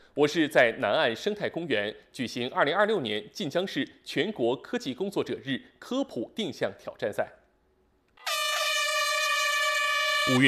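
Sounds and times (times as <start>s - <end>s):
speech: 0.2s - 7.4s, 10.3s - 10.4s
air horn blast marking the start of an orienteering race in an ecological park: 8.2s - 10.4s.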